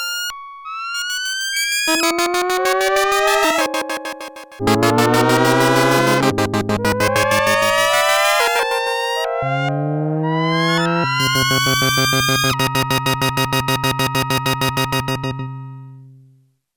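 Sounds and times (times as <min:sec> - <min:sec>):
ascending Sequential Circuits Prophet-5 synthesizer bleeps: 0:00.1 - 0:15.7.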